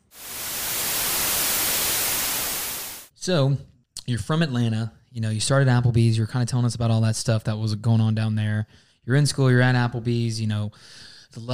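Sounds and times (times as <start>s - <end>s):
loud hissing static transition effect: 0.0s - 3.1s
speech: 3.2s - 11.5s.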